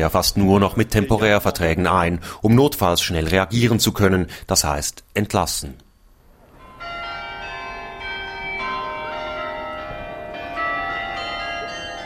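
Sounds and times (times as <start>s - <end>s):
speech: 0.0s - 5.8s
church bells pealing from a Flemish belfry in Béthune: 6.6s - 12.0s.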